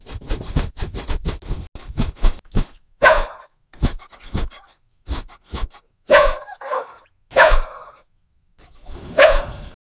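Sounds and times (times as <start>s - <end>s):
quick sniffing: 0.0s - 6.5s
playful bark: 3.0s - 4.8s, 6.1s - 8.0s, 9.1s - 9.8s.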